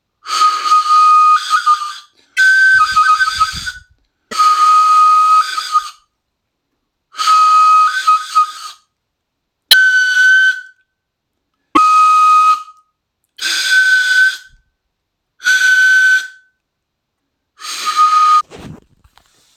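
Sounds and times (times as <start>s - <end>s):
flute playing from Burkina Faso: 0.3s - 6.0s, 7.2s - 8.8s, 9.7s - 10.7s, 11.8s - 12.8s, 13.4s - 14.6s, 15.4s - 16.5s, 17.6s - 18.8s.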